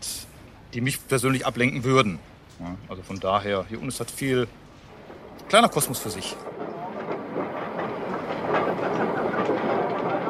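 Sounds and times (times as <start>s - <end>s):
speech: 0.7s - 4.6s, 5.5s - 6.7s
armoured face conveyor starting up in an underground coal mine: 3.0s - 10.2s.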